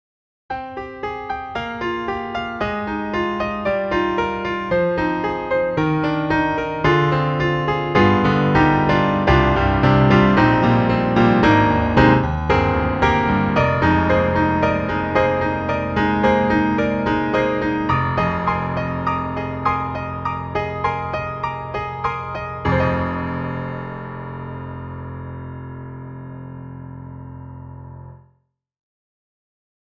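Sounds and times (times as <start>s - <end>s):
D-PRO mini piano: 0.5s - 28.4s.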